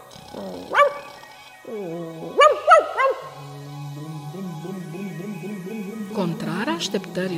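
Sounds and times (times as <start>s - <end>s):
dog growling and whining: 0.0s - 4.4s
dog giving sharp high barks: 0.7s - 1.1s, 2.4s - 3.3s
speech: 1.7s - 2.3s, 6.2s - 7.3s.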